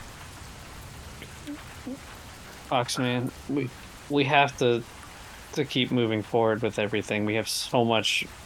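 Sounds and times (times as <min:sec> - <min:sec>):
steady rain: 0:00.0 - 0:08.4
speech: 0:01.5 - 0:08.4
faint tonal chirps: 0:02.8 - 0:03.7.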